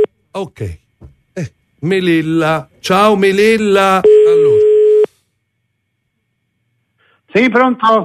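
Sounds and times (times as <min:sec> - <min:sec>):
speech: 0:00.4 - 0:00.8, 0:01.4 - 0:04.6, 0:07.4 - 0:08.0
telephone ringing tone on a call: 0:04.0 - 0:05.1.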